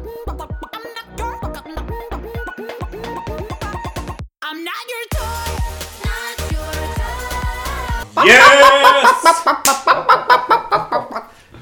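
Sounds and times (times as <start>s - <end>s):
pop song: 0.0s - 9.5s
voice imitating chicken clucking in a pop song: 8.2s - 9.5s
speech: 8.2s - 10.5s
laughter: 8.2s - 11.2s.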